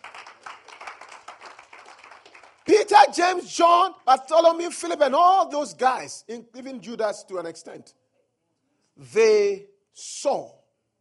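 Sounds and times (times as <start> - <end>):
church congregation clapping hands: 0.0 - 3.4
speech: 2.6 - 8.0, 9.0 - 10.6.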